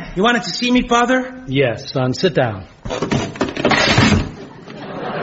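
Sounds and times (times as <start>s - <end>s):
speech: 0.2s - 3.2s
old wooden chair cracking and splintering as it collapses under someone's weight: 2.8s - 4.5s
laughter: 4.4s - 5.1s.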